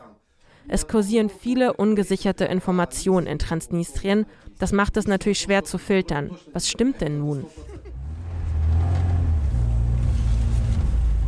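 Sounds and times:
speech: 0.7s - 7.9s
laughter: 7.4s - 8.2s
minibus engine rumble heard from inside on a hot stuffy day: 7.9s - 11.2s
steady road noise from a minibus: 7.9s - 11.2s.

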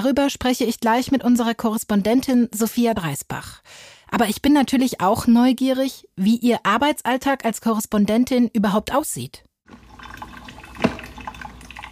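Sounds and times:
speech: 0.0s - 10.2s
coffee machine running with gurgling liquid hiss: 9.7s - 11.9s.

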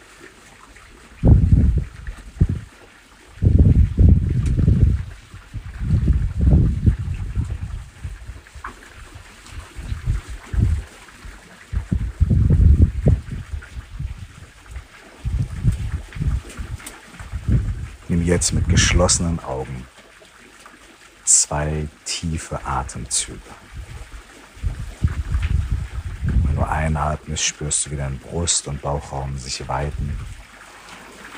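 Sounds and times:
water flowing outdoors: 0.0s - 31.3s
gusty wind buffeting the microphone: 1.2s - 2.7s, 3.3s - 19.8s, 21.5s - 27.3s, 29.6s - 30.5s
speech: 18.4s - 19.9s, 21.5s - 23.8s, 26.8s - 30.3s.

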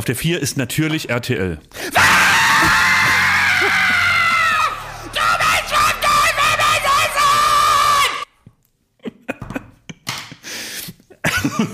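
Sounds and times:
speech: 0.0s - 2.8s
audience screaming and yelling: 1.9s - 8.3s.

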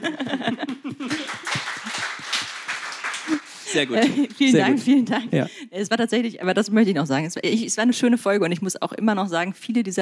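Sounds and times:
people chuckling: 0.0s - 2.4s, 3.1s - 5.5s
crowd applause: 0.0s - 5.4s
speech: 3.8s - 9.9s.

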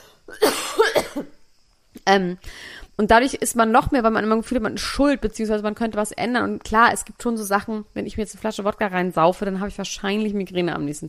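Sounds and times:
person coughing: 0.3s - 1.3s
speech: 2.1s - 11.0s.

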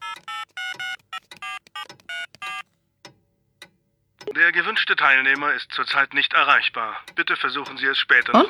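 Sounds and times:
mobile phone keypad tones: 0.0s - 2.7s
speech: 4.4s - 8.4s.

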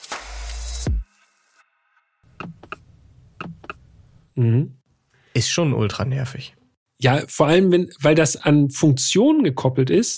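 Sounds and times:
car touch panel and steering-wheel button feedback blips: 3.4s - 3.8s
speech: 4.4s - 4.8s, 5.4s - 10.1s.

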